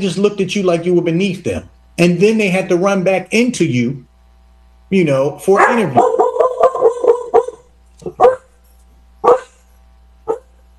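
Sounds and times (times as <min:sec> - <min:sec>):
speech: 0:00.0 - 0:04.1, 0:04.9 - 0:06.2
female dog barking: 0:05.6 - 0:08.5, 0:09.2 - 0:09.6, 0:10.3 - 0:10.5.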